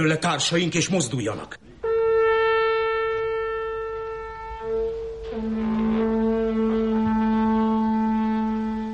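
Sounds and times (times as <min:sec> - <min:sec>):
speech: 0:00.0 - 0:01.6
horn blown as an alarm signal: 0:01.8 - 0:08.9.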